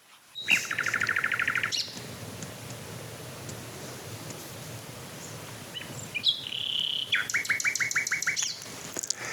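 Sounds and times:
common nightingale singing: 0:00.3 - 0:02.2, 0:05.1 - 0:08.7.

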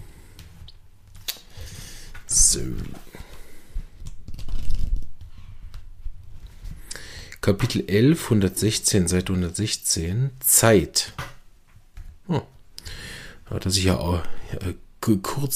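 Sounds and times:
book pages rustling as they are leafed through: 0:02.2 - 0:06.9
speech: 0:02.4 - 0:03.1, 0:07.5 - 0:11.2, 0:12.3 - 0:12.5, 0:13.5 - 0:15.5.

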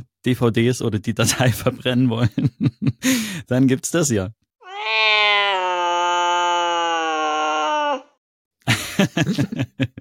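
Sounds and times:
speech: 0:00.2 - 0:05.2, 0:09.0 - 0:09.9
cat yowling: 0:04.6 - 0:08.2
laughter: 0:08.7 - 0:09.9.

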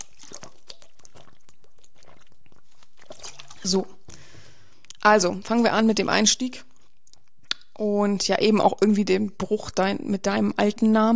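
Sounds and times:
person sipping a drink: 0:00.0 - 0:05.0
speech: 0:03.6 - 0:04.0, 0:05.0 - 0:06.7, 0:07.8 - 0:11.1.

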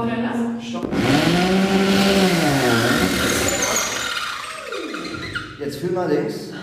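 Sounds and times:
electric power drill drilling into a wall: 0:00.8 - 0:05.5
speech: 0:05.9 - 0:06.5.

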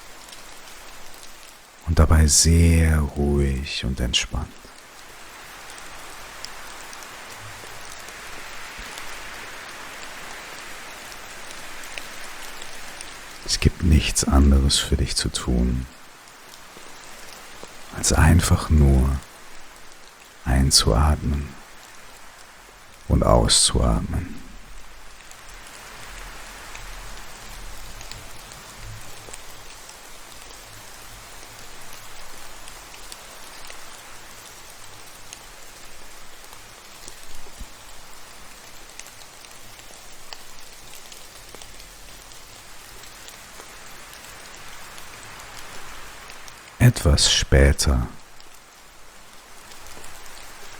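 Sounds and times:
steady rain: 0:00.0 - 0:50.7
soft voice: 0:01.9 - 0:04.6, 0:13.4 - 0:15.9, 0:17.9 - 0:19.3, 0:20.5 - 0:21.6, 0:23.1 - 0:24.6, 0:46.8 - 0:48.2
speech: 0:01.9 - 0:04.6, 0:13.5 - 0:16.0, 0:18.0 - 0:19.3, 0:20.4 - 0:21.6, 0:23.1 - 0:24.4, 0:47.0 - 0:48.2.

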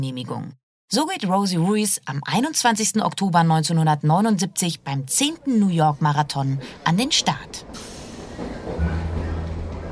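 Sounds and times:
speech: 0:00.0 - 0:09.0
subway train rumbling: 0:05.6 - 0:09.8.

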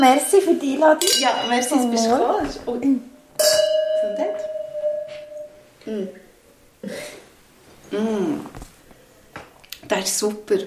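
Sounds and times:
speech: 0:00.0 - 0:04.6, 0:05.8 - 0:06.2, 0:06.8 - 0:07.1, 0:07.9 - 0:08.6, 0:09.9 - 0:10.6
wine glasses clinking in a toast: 0:01.0 - 0:02.6, 0:03.3 - 0:05.8.

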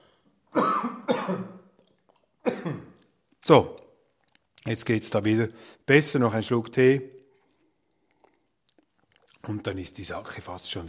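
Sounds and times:
person coughing harshly: 0:00.5 - 0:01.7, 0:02.4 - 0:03.0
speech: 0:03.5 - 0:03.8, 0:04.6 - 0:07.2, 0:09.4 - 0:10.8.

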